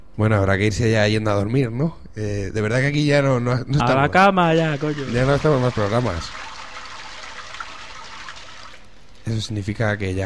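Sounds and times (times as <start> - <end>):
speech: 0.2 - 6.5, 9.3 - 10.2
water rushing from a toilet flushing: 4.5 - 8.9.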